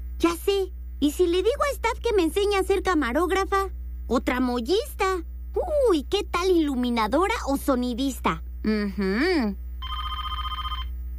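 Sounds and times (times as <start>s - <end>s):
speech: 0.2s - 9.6s
house landline telephone ringing with electronic trill: 9.8s - 11.0s.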